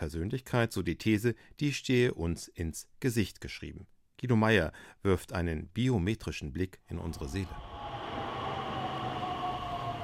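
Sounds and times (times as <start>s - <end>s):
speech: 0.0s - 7.7s
trains, suburban rail and underground trains rumbling at a busy Berlin railway hub: 7.6s - 10.0s.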